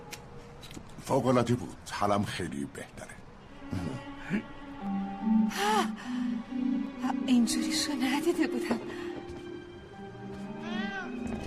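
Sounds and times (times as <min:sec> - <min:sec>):
speech: 0:01.1 - 0:03.1, 0:03.7 - 0:06.1, 0:07.3 - 0:09.1
cat meowing: 0:10.6 - 0:11.2.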